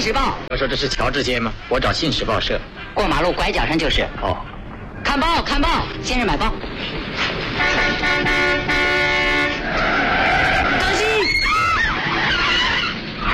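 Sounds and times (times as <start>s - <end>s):
speech: 0.0s - 4.5s, 5.1s - 9.1s
busy street noise: 0.0s - 13.3s
car tires skidding and screeching: 1.0s - 13.3s
car horn blaring: 7.5s - 9.6s.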